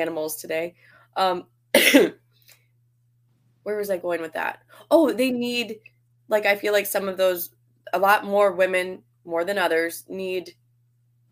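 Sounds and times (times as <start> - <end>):
speech: 0.0 - 2.2, 3.6 - 10.6
person coughing: 1.8 - 2.2.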